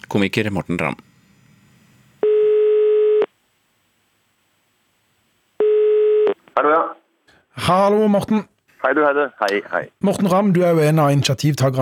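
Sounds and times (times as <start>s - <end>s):
speech: 0.1s - 1.1s, 6.6s - 7.0s, 7.6s - 11.7s
buzzing telephone ringback tone of an outgoing call: 2.2s - 3.3s, 5.6s - 6.4s.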